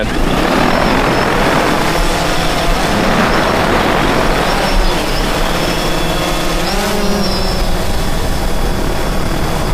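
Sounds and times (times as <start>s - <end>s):
drone propellers buzzing with a thin high whine: 0.0s - 9.7s.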